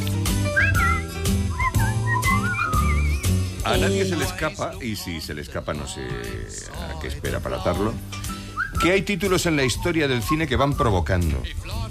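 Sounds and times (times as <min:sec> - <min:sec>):
person whistling a cheerful song melody: 0:00.3 - 0:03.9, 0:08.3 - 0:11.2
speech: 0:03.7 - 0:08.2, 0:08.8 - 0:11.8.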